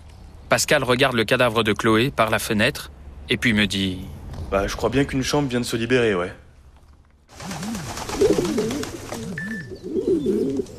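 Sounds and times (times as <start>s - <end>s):
speech: 0.5s - 6.4s
pigeons cooing under a roof: 7.4s - 10.7s.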